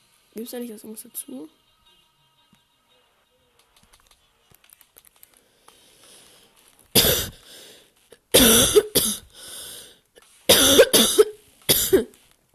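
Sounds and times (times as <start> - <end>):
speech: 0.4 - 1.6
person coughing: 7.0 - 7.4, 8.4 - 9.3, 10.5 - 12.1.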